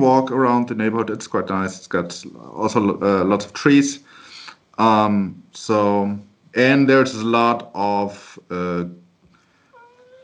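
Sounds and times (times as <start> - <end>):
speech: 0.0 - 4.2, 4.8 - 9.0
cat meowing: 9.8 - 10.2.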